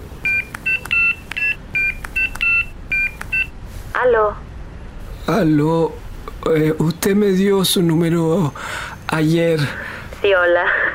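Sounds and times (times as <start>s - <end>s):
telephone keypad tone beeps of a number being dialled: 0.2s - 3.5s
speech: 4.0s - 4.4s, 5.3s - 10.9s.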